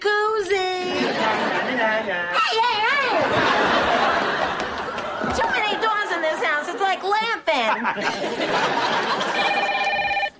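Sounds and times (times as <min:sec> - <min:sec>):
laughter: 0:00.7 - 0:10.2
speech: 0:07.9 - 0:09.3
telephone ringing with electronic tone: 0:08.8 - 0:10.3.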